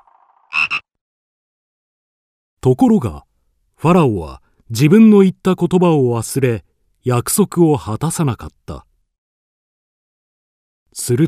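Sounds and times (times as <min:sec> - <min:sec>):
frog croaking harsh and raspy: 0:00.5 - 0:00.9
speech: 0:02.6 - 0:08.9, 0:11.0 - 0:11.2.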